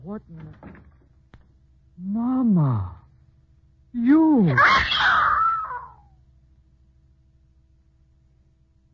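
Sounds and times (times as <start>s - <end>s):
speech: 0.0s - 0.9s, 2.0s - 3.0s, 3.9s - 5.4s
person screaming in fright: 4.4s - 6.1s.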